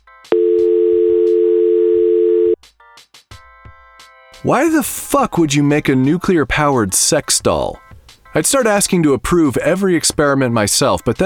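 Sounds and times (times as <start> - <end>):
telephone tone after a cell phone call ends: 0.3 - 2.6
speech: 4.4 - 7.8, 8.4 - 11.2.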